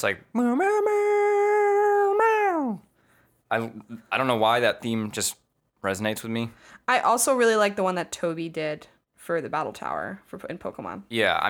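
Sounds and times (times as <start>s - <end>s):
speech: 0.0s - 1.1s, 3.5s - 11.4s
person imitating a dog's howl: 0.4s - 2.8s.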